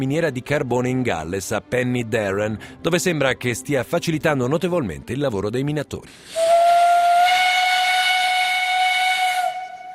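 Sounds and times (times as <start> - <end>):
speech: 0.0 - 6.7
early steam locomotive whistle blowing as the pressure valve opens: 6.3 - 9.9.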